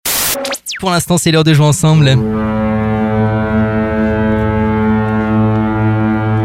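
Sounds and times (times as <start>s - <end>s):
speech: 0.4s - 2.6s
ship horn long deep blast: 1.9s - 6.4s.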